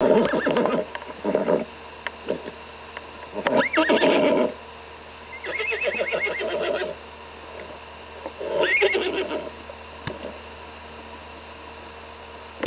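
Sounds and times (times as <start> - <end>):
horse whinnying: 0.0 - 1.7, 3.4 - 4.5, 5.4 - 7.0, 8.4 - 9.5
faint steady hum: 0.0 - 12.6.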